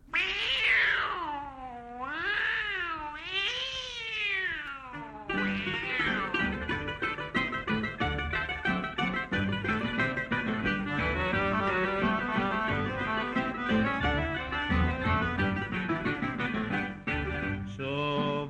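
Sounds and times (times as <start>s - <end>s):
man imitating cat meows: 0.1s - 6.5s
instrumental song about a tomcat: 5.0s - 18.4s.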